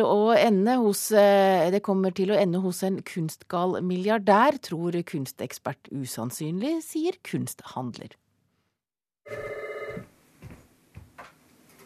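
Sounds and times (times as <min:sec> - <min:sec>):
speech: 0:00.0 - 0:08.2, 0:09.3 - 0:09.6
telephone ringing in an electronic trill: 0:09.2 - 0:10.1.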